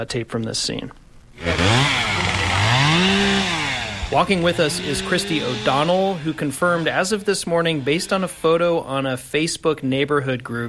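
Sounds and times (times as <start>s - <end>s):
speech: 0.0s - 2.0s, 4.1s - 10.6s
chainsaw revving at a wildfire scene, held by a fire crew member: 1.4s - 8.9s.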